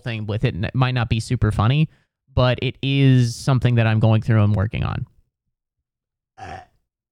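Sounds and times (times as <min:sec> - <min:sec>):
speech: 0:00.0 - 0:05.1, 0:06.4 - 0:06.7
burp: 0:06.4 - 0:06.8.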